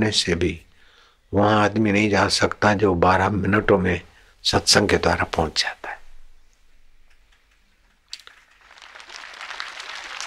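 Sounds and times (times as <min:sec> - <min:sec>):
speech: 0:00.0 - 0:00.7, 0:01.3 - 0:05.9
audience applause: 0:08.2 - 0:10.2.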